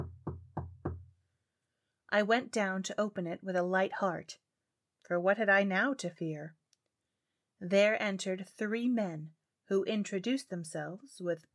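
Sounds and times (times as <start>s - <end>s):
firm knocks on a wooden door: 0.0s - 1.1s
speech: 2.1s - 4.4s, 5.1s - 6.6s, 7.6s - 11.5s.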